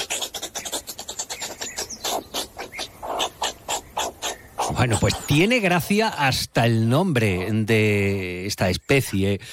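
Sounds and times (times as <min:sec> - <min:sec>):
meerkat alarm calls: 0:00.0 - 0:05.5
speech: 0:04.8 - 0:09.5.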